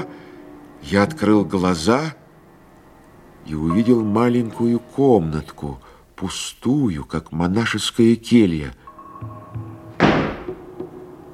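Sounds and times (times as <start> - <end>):
speech: 0.9 - 2.2, 3.4 - 9.6
door slamming shut: 9.9 - 10.7.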